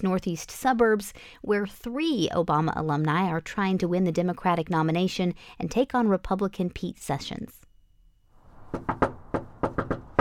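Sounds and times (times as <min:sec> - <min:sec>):
speech: 0:00.0 - 0:07.6, 0:08.7 - 0:09.2
friendly knocking on a front door: 0:08.6 - 0:10.1.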